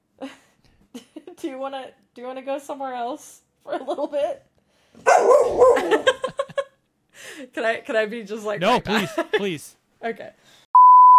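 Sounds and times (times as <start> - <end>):
speech: 1.4 - 6.2, 7.4 - 10.6
dog barking: 5.0 - 6.1
laughter: 8.6 - 9.7.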